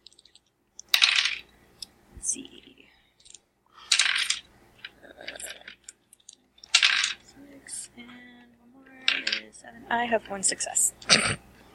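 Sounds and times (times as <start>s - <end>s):
seven dice rolled during a tabletop role-playing game: 0.0s - 1.5s, 3.2s - 7.3s, 9.1s - 9.5s
speech: 2.3s - 2.8s, 9.7s - 11.5s.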